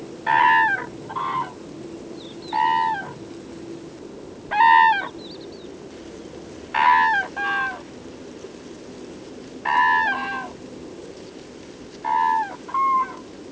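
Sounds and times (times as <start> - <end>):
Grus grus cranes calling in duet: 0.0 - 1.7, 2.4 - 3.2, 4.5 - 5.2, 6.7 - 7.9, 9.6 - 10.6, 12.0 - 13.3
Common crane Grus grus calling from ground: 0.0 - 3.9, 4.5 - 5.8, 6.7 - 8.0, 9.5 - 11.0, 11.9 - 13.5.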